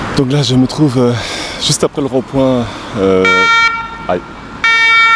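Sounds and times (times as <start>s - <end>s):
speech: 0.2s - 4.4s
fire engine siren: 3.2s - 5.1s.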